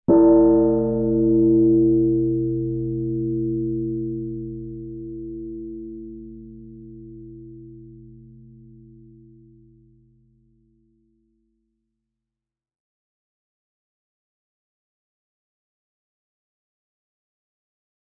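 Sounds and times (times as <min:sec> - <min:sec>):
church bell ringing: 0:00.1 - 0:09.6.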